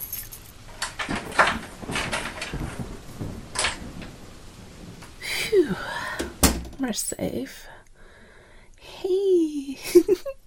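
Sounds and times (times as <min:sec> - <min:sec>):
keys jingling: 0:00.0 - 0:02.6
steady rain hissing softly: 0:00.0 - 0:08.5
front door of a house opening and closing: 0:00.6 - 0:05.2, 0:06.2 - 0:06.9
speech: 0:06.8 - 0:07.7.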